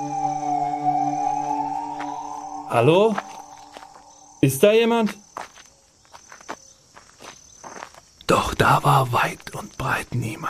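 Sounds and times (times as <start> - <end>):
insect chirping: 0.0 - 10.4
soft footsteps walking into a castle courtyard: 1.8 - 4.3, 5.0 - 8.2
speech: 2.7 - 3.3, 4.4 - 5.5, 8.7 - 10.4.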